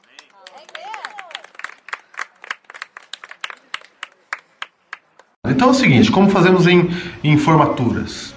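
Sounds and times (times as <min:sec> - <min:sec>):
group of people applauding: 0:00.0 - 0:05.4
speech: 0:05.5 - 0:08.3.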